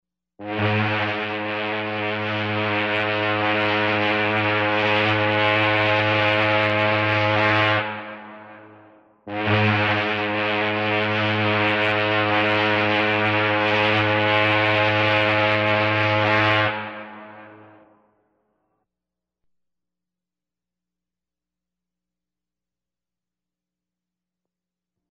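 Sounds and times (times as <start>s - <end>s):
liner horn: 0.4s - 18.4s.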